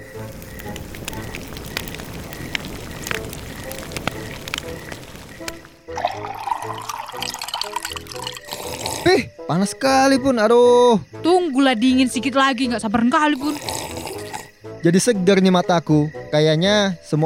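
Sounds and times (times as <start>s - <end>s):
water boiling for coffee: 0.0s - 9.0s, 13.4s - 14.5s
speech: 9.1s - 13.7s, 14.8s - 17.2s.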